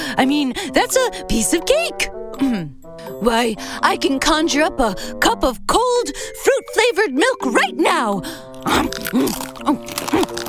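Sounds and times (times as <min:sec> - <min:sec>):
speech: 0:00.1 - 0:02.6, 0:03.2 - 0:10.4
cow crunching and chewing ice cubes: 0:08.5 - 0:10.4.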